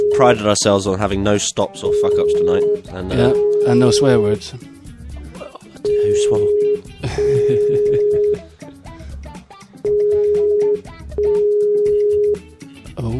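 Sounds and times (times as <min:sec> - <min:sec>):
outgoing phone call ringing tone: 0:00.0 - 0:00.4, 0:01.9 - 0:04.2, 0:05.8 - 0:08.4, 0:09.8 - 0:12.5
speech: 0:00.2 - 0:04.7, 0:05.8 - 0:07.7
laughter: 0:07.0 - 0:08.9.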